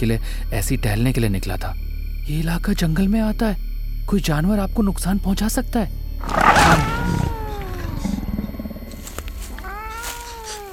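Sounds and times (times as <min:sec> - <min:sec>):
speech: 0:00.0 - 0:07.2
large blue-eyed cat snarling as it pounces in a jungle: 0:06.2 - 0:10.7.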